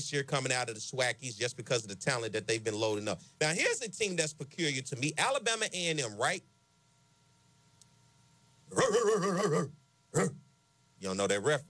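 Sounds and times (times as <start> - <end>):
speech: 0.0 - 6.5, 8.7 - 10.4, 11.0 - 11.6
person imitating dog barks: 8.7 - 10.4.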